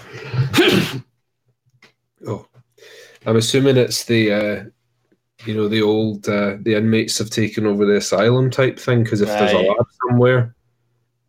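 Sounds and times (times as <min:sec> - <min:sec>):
speech: 0:00.1 - 0:01.1, 0:02.2 - 0:04.8, 0:05.4 - 0:10.6
person sneezing: 0:00.4 - 0:01.1.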